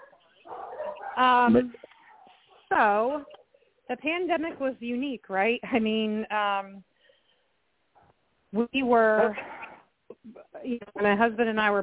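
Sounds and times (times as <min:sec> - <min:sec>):
dog barking: 0:00.0 - 0:01.2
speech: 0:01.2 - 0:01.9, 0:02.7 - 0:06.9, 0:08.5 - 0:09.6, 0:10.2 - 0:11.8.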